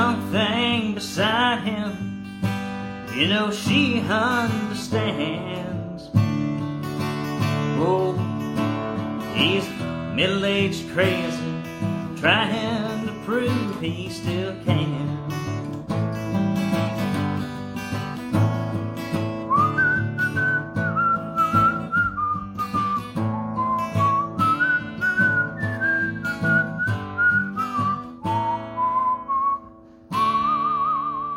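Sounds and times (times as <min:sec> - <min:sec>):
guitar strumming: 0:00.0 - 0:31.3
speech: 0:03.2 - 0:06.1, 0:07.8 - 0:08.3, 0:09.4 - 0:11.4, 0:12.2 - 0:15.3
person whistling a melody: 0:19.4 - 0:31.3.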